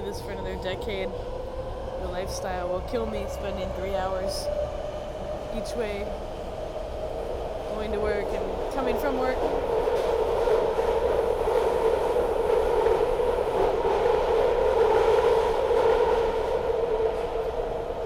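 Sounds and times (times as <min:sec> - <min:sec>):
rumble inside a moving train carriage: 0:00.0 - 0:18.0
speech: 0:00.1 - 0:01.4, 0:02.0 - 0:04.8, 0:05.5 - 0:06.4, 0:07.8 - 0:09.8.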